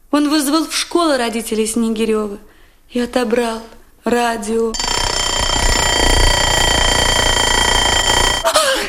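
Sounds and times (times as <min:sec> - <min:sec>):
speech: 0:00.2 - 0:04.9
alarm clock ringing: 0:04.8 - 0:08.7.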